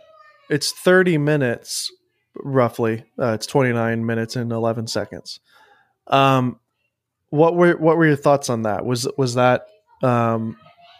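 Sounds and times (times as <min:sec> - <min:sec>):
child screaming in another room: 0:00.0 - 0:00.7
speech: 0:00.5 - 0:06.6, 0:07.3 - 0:10.7.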